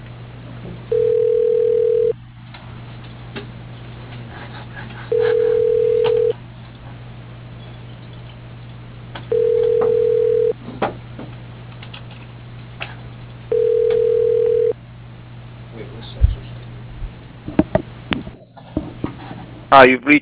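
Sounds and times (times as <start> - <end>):
faint constant hum: 0.0 - 20.1
telephone ringback tone during a call transfer: 0.9 - 2.2, 5.1 - 6.4, 9.3 - 10.6, 13.5 - 14.8
speech: 19.8 - 20.1.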